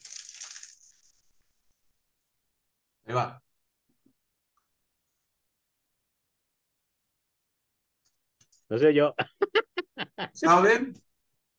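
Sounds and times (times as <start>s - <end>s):
crisp snack being bitten near a microphone: 0.0s - 0.9s
speech: 3.1s - 3.4s, 8.7s - 11.0s
laughter: 9.1s - 10.4s.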